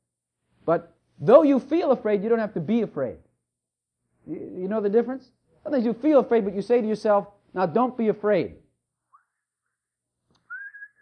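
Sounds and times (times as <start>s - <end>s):
speech: 0.7s - 3.2s, 4.2s - 8.6s
person whistling: 10.4s - 10.9s.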